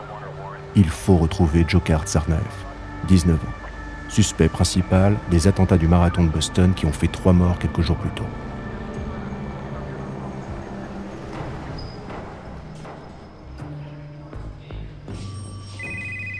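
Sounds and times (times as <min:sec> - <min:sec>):
speech: 0:00.8 - 0:08.5
telephone ringing with bright electronic tones: 0:15.8 - 0:16.3.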